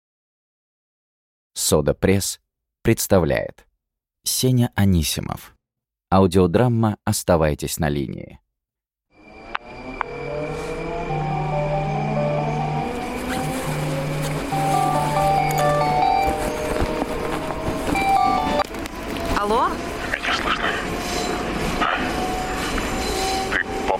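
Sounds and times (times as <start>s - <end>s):
speech: 1.6s - 8.4s
subway train motor whining: 9.2s - 20.2s
subway train rumbling in a metro: 9.2s - 23.9s.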